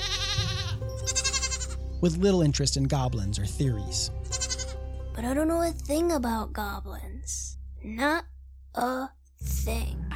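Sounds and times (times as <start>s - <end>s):
goats bleating: 0.0s - 1.8s, 4.3s - 4.8s
speech: 2.0s - 4.2s, 5.2s - 10.1s.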